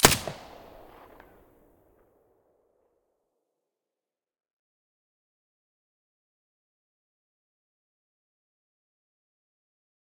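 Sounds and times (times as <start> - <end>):
MP5 submachine gun with silencer firing: 0.0 - 1.4.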